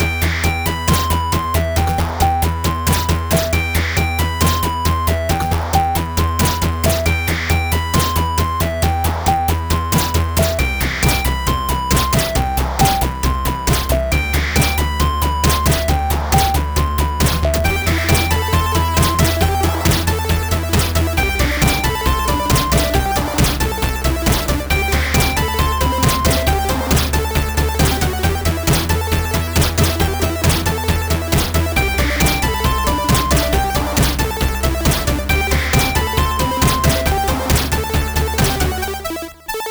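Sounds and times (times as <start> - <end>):
music loop: 0.0 - 39.6.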